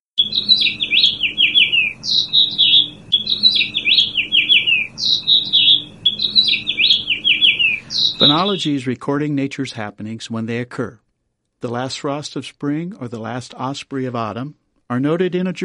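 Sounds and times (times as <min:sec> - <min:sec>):
house finch singing: 0:00.2 - 0:08.8
speech: 0:08.2 - 0:11.0, 0:11.6 - 0:15.6.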